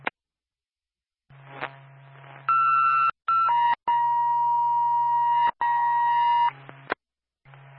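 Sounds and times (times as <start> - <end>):
ambulance dispatch radio paging tones: 2.5 - 6.6.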